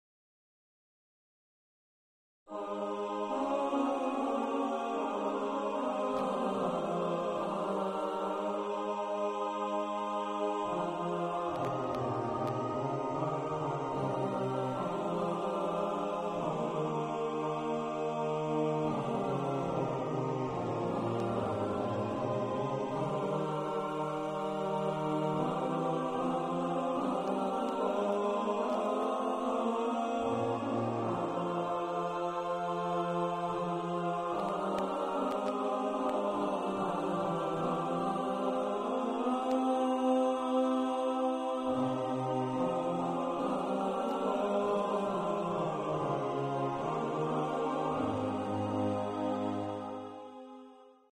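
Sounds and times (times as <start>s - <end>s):
male and female choir singing: 2.5s - 51.1s.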